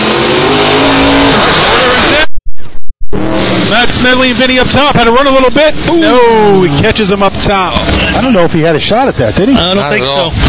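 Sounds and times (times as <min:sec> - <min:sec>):
fire truck engine revving during a firefighting competition: 0:00.0 - 0:02.3, 0:03.0 - 0:08.4
speech: 0:04.0 - 0:10.4.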